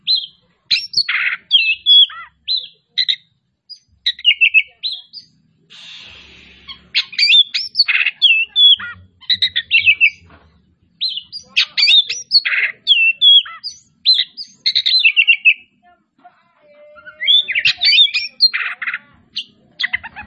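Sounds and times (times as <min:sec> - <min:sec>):
Oriental magpie-robin singing whistles, scratchy notes and trills: 0:00.0 - 0:05.4, 0:06.0 - 0:15.8, 0:16.8 - 0:20.2
brief hiss: 0:05.7 - 0:06.9.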